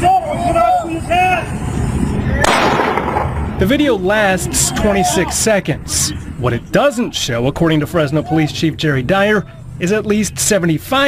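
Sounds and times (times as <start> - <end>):
raised shouting voices recorded on a phone: 0.0 - 1.5, 4.2 - 5.6, 7.9 - 8.7
noisy background: 0.0 - 11.0
police gunshot at a gas station: 2.4 - 3.5
speech: 3.6 - 11.0.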